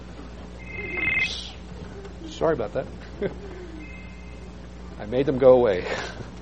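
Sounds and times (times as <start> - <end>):
steady hum: 0.0 - 6.3
mobile phone ringing during a sermon: 0.6 - 1.5
speech: 2.4 - 3.5, 5.0 - 6.3.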